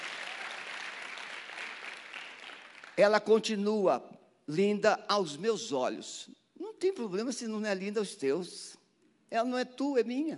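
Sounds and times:
crowd applauding: 0.0 - 3.0
speech: 3.0 - 10.3.

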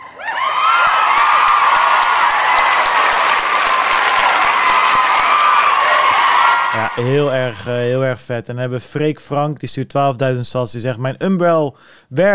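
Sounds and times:
cheers and whoops: 0.0 - 7.4
loud crowd applause: 0.0 - 7.7
speech: 7.0 - 12.3.

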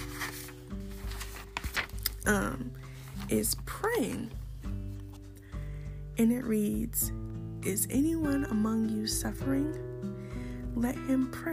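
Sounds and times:
paper rustling in crinkly bursts: 0.0 - 5.4
speech: 2.2 - 4.4, 6.2 - 9.9, 10.8 - 11.5.

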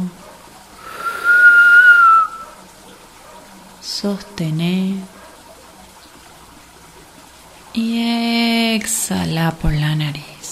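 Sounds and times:
whistling inhale through pursed lips: 0.8 - 2.4
speech: 4.0 - 5.2, 7.8 - 8.1, 8.8 - 10.2.

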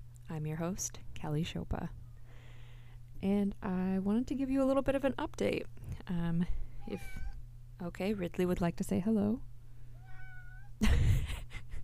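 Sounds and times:
speech: 0.3 - 2.0, 3.2 - 9.5
cat meowing: 6.8 - 7.4, 10.0 - 10.7.

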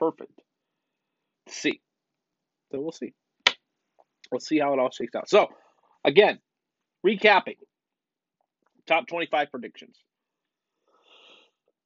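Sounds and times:
speech: 0.0 - 0.5, 1.5 - 1.9, 2.7 - 3.2, 4.3 - 7.6, 8.9 - 10.1
raspy wheezing intake of breath: 10.8 - 11.6.

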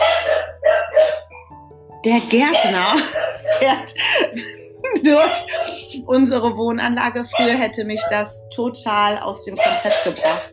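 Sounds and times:
dog barking: 0.0 - 1.5, 2.4 - 3.9, 5.2 - 5.8, 7.3 - 8.2, 9.5 - 10.5
speech: 2.0 - 10.5
laughter: 2.7 - 6.0.

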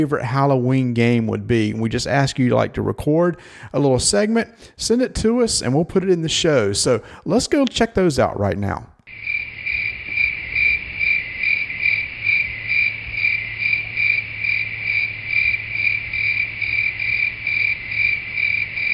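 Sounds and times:
speech: 0.0 - 9.4
crickets chirping in a pulsing chorus: 9.1 - 18.9.

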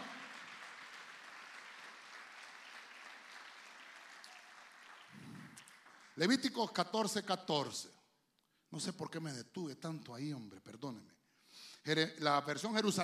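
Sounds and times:
audience applauding during a sermon: 0.0 - 6.4
speech: 6.2 - 8.0, 8.8 - 11.2, 11.8 - 13.0.

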